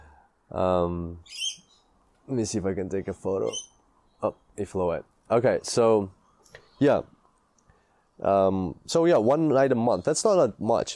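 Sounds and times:
speech: 0.5 - 1.6, 2.3 - 7.2, 8.2 - 10.9
parrot squawking call: 1.2 - 1.8, 3.4 - 3.8.

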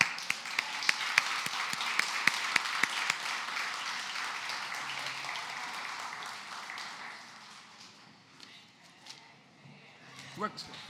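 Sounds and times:
crowd applauding with dense steady hand clapping: 0.0 - 8.0.

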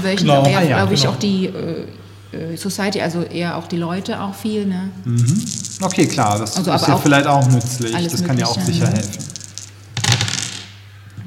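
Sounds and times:
speech: 0.0 - 9.4
low hum: 0.0 - 11.2
dice rolling on a tabletop: 5.3 - 10.8.

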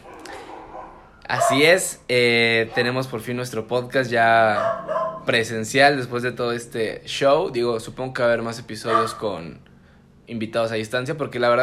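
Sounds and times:
dogs barking with sharp yaps and yips: 0.0 - 1.9, 2.6 - 3.2, 4.4 - 5.3, 8.8 - 9.4
speech: 1.3 - 9.7, 10.3 - 11.6.

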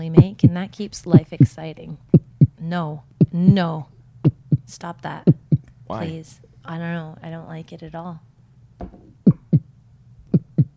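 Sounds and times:
speech: 0.0 - 4.0, 4.7 - 9.0
deep heartbeat-like thumps: 0.2 - 2.6, 3.2 - 5.7, 8.8 - 9.7, 10.3 - 10.7.

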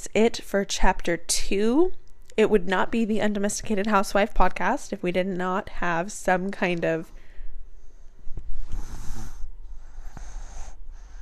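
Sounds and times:
speech: 0.1 - 7.2
toddler snoring softly with raspy wheezy breaths: 8.6 - 11.1.

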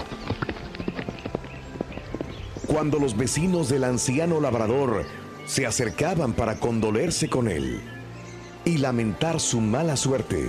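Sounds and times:
horse hooves clip-clopping: 0.0 - 5.2
speech: 2.7 - 8.0, 8.6 - 10.4.

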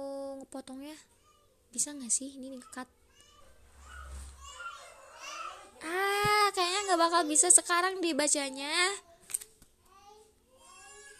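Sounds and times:
speech: 0.5 - 3.0, 6.9 - 9.1
children chattering and playing: 2.5 - 7.5, 9.0 - 11.1
low rumble: 3.5 - 4.6.

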